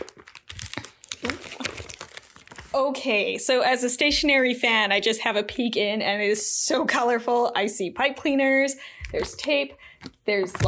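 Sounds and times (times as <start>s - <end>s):
packaging material of a craft supplies package crinkling and rustling: 0.0s - 2.8s
speech: 2.8s - 10.6s.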